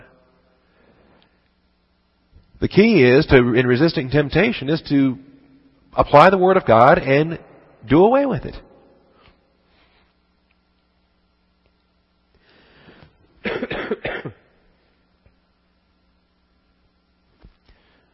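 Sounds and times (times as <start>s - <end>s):
quiet room hum: 0.0s - 18.1s
speech: 2.6s - 5.3s, 6.0s - 8.7s
rapid coughs close to the microphone: 13.4s - 14.4s
soft throat-clearing rasp: 13.4s - 14.4s.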